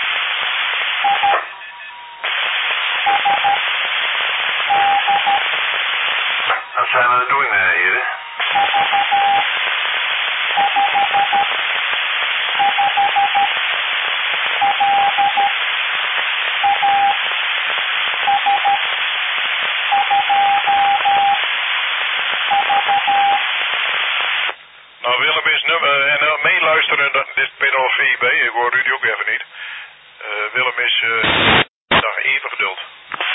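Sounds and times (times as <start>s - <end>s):
constant hiss of amateur radio band noise: 0.0s - 33.3s
Morse code signal over amateur radio: 1.0s - 2.2s, 3.0s - 3.6s, 4.7s - 5.4s, 8.4s - 9.5s, 10.6s - 11.6s, 12.6s - 13.6s, 14.6s - 15.6s, 16.6s - 17.2s, 18.2s - 18.9s, 19.9s - 21.4s, 22.5s - 23.5s.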